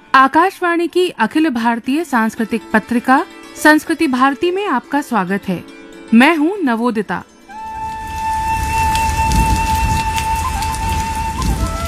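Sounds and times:
speech: 0:00.2 - 0:07.3
steady rain pattering on a surface: 0:07.7 - 0:11.8.

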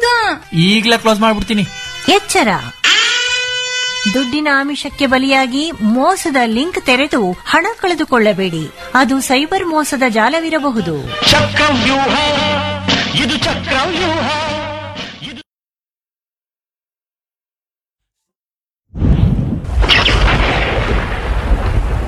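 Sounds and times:
speech: 0:00.5 - 0:02.8, 0:04.0 - 0:14.4
bright buzzing tonal sound: 0:02.8 - 0:04.4
thunder rumbling through heavy rain: 0:19.0 - 0:22.0
heavy rain: 0:20.4 - 0:22.0.

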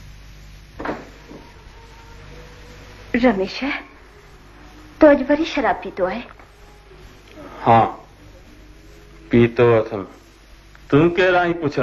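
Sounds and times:
steady low hum: 0:00.0 - 0:11.8
door opening with wooden clunk and rustle: 0:00.8 - 0:01.5
speech: 0:03.1 - 0:03.9, 0:05.0 - 0:06.4, 0:07.6 - 0:08.0, 0:09.3 - 0:10.2, 0:10.9 - 0:11.8.

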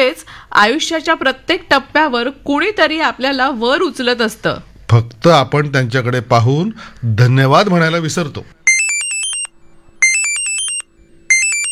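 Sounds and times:
speech: 0:00.0 - 0:08.6
mobile phone ringing with an electronic ringtone: 0:08.7 - 0:11.7.

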